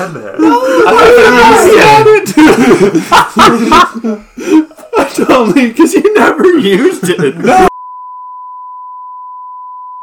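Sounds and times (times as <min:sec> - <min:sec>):
speech: 0:00.0 - 0:04.6, 0:05.2 - 0:07.7
laughter: 0:00.0 - 0:07.7
flat mid-pitched censor bleep tone: 0:07.7 - 0:10.0.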